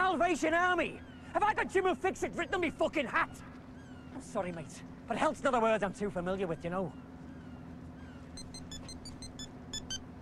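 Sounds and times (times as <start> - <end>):
speech: 0.1 - 3.5, 4.2 - 7.1
mobile phone ringtone inside a car boot: 8.4 - 10.1.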